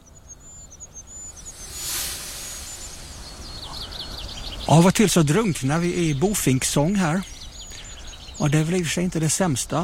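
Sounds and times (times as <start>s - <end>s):
goldcrest thin high-pitched calls: 0.0s - 9.8s
steady rushing background: 0.9s - 4.5s
speech: 4.7s - 7.3s, 8.4s - 9.8s.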